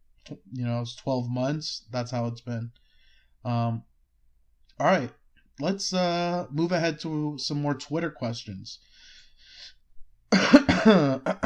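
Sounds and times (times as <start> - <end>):
speech: 0.3 - 2.8, 3.4 - 3.9, 4.8 - 9.8, 10.8 - 11.4
throat clearing and coughing: 10.3 - 11.4.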